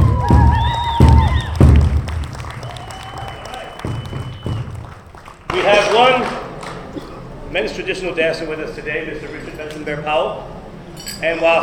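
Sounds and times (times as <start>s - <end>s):
crowd voices and whoops: 0.0s - 1.6s, 2.6s - 4.6s
audience applauding: 0.0s - 7.2s
speech: 7.6s - 10.6s, 11.2s - 11.6s.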